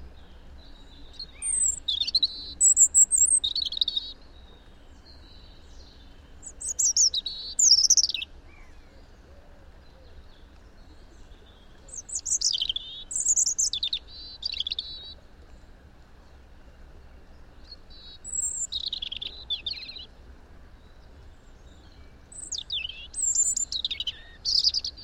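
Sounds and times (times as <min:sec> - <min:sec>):
European robin Erithacus rubecula song of high thin warbling and trilling phrases: 0:00.0 - 0:04.3, 0:05.0 - 0:08.7, 0:11.0 - 0:15.2, 0:17.5 - 0:20.1, 0:22.3 - 0:25.0
faint steady background hiss: 0:00.0 - 0:25.0.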